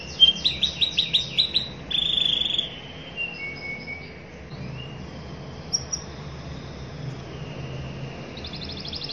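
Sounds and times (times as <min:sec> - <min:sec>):
canary singing in cengkok style: 0:00.0 - 0:09.1.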